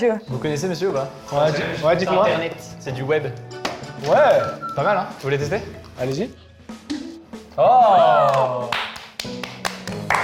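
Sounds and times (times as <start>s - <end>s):
speech: 0.0s - 6.4s, 7.6s - 9.3s
scattered uneven claps of an audience: 8.2s - 10.2s.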